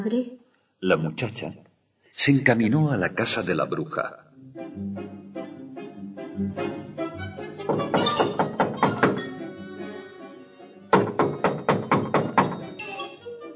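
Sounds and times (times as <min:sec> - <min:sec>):
speech: 0:00.0 - 0:01.6, 0:02.2 - 0:05.0
knocking on a wooden house door: 0:07.6 - 0:09.5, 0:10.9 - 0:12.8.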